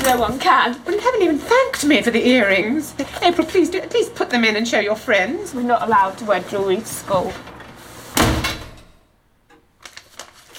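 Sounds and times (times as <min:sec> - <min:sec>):
speech: 0:00.1 - 0:07.5
front door slammed shut: 0:06.9 - 0:09.1.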